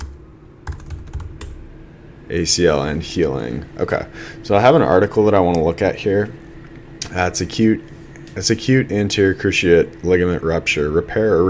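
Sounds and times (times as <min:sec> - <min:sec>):
typing on a computer keyboard: 0:00.0 - 0:01.6
speech: 0:02.3 - 0:06.4, 0:07.1 - 0:11.4.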